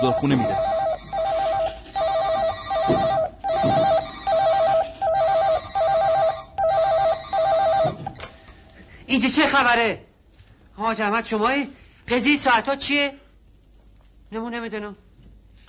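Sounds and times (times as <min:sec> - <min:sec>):
speech: 0:00.0 - 0:00.7, 0:09.2 - 0:10.1, 0:10.8 - 0:13.2, 0:14.3 - 0:15.0
many office telephones ringing with an electronic trill: 0:00.0 - 0:08.4.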